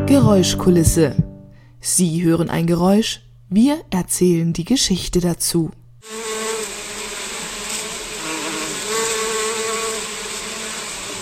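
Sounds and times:
speech: 0:00.1 - 0:01.2, 0:01.8 - 0:06.3
honeybees buzzing around beehives on a green space: 0:06.0 - 0:11.2.

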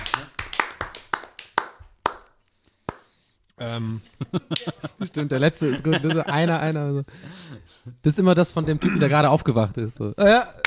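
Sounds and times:
hand clapping: 0:00.0 - 0:03.2
speech: 0:03.6 - 0:10.6
laughter: 0:03.8 - 0:06.8.

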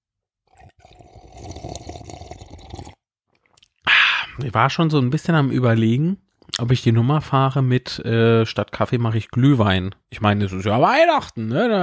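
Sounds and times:
slurp of someone sipping from a ceramic mug: 0:00.5 - 0:03.6
speech: 0:04.4 - 0:11.8.

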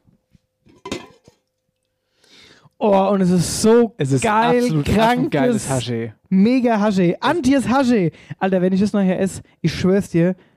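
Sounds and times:
cooking pot lifted with metallic clinks: 0:00.7 - 0:01.4
speech: 0:02.8 - 0:10.5.

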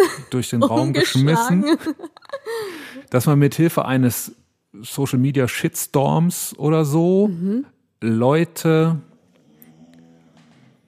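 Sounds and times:
laughter: 0:00.0 - 0:03.0
speech: 0:00.1 - 0:09.1
dog snoring: 0:09.2 - 0:10.8.

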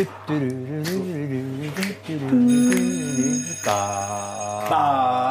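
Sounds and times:
speech: 0:00.0 - 0:02.8
bell-like ringing sound effect: 0:02.4 - 0:05.2.

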